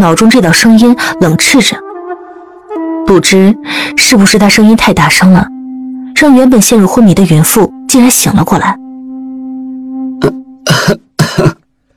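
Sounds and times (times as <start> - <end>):
speech: 0.0 - 1.9, 3.1 - 5.6, 6.2 - 8.8, 10.2 - 11.5
unwell person coughing raspily: 10.2 - 11.6
short throat sound: 10.2 - 11.9.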